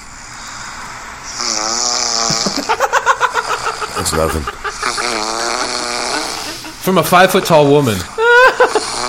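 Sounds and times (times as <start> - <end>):
woman snoring loudly with rattling inhale: 1.3 - 4.0, 4.6 - 6.8, 8.5 - 9.0
laughter: 2.3 - 9.0
speech: 4.0 - 4.6, 6.8 - 8.1.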